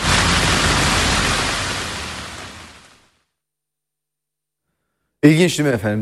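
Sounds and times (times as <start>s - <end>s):
heavy rain downpour: 0.0s - 3.2s
speech: 5.2s - 6.0s.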